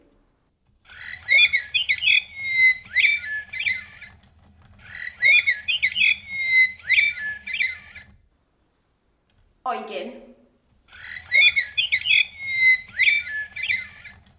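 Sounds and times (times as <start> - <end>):
faint low whirring hum: 0.0 - 14.3
mechanical artificial nightingale singing a bright warbling whistled phrase: 0.8 - 8.2, 10.9 - 14.3.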